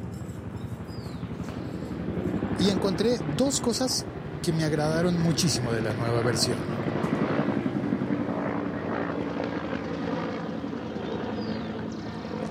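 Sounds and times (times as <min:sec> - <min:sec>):
white and green police helicopter flying overhead: 0:00.0 - 0:12.4
speech: 0:02.6 - 0:07.0.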